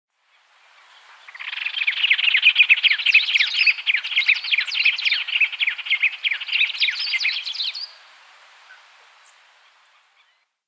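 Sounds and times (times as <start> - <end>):
White-rumped tanager Cypsnagra hirundinacea singing: 0.2 - 8.0, 8.6 - 10.6.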